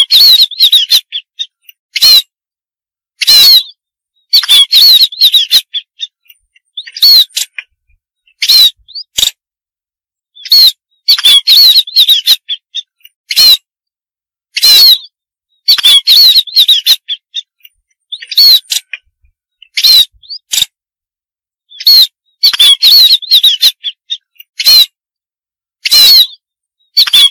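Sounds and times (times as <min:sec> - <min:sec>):
munia harsh buzzy calls and thin wavering whistles: 0:00.0 - 0:02.3, 0:03.2 - 0:07.6, 0:08.2 - 0:09.2, 0:10.4 - 0:13.7, 0:14.5 - 0:20.6, 0:21.7 - 0:25.0.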